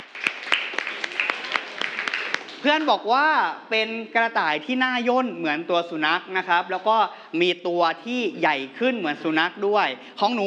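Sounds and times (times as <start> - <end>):
children clapping for a classmate in a classroom: 0.0 - 2.9
speech: 2.6 - 10.4.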